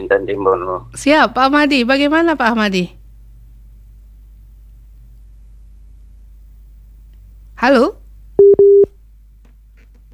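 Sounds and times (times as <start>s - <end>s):
speech: 0.0s - 3.0s, 7.6s - 8.0s
phone line disconnect tone beeps after dropped call: 8.4s - 8.9s.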